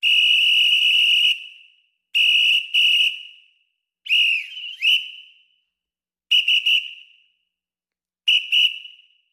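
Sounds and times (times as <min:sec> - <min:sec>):
traffic cop whistle: 0:00.0 - 0:03.4, 0:04.1 - 0:05.5, 0:06.3 - 0:07.2, 0:08.3 - 0:09.2.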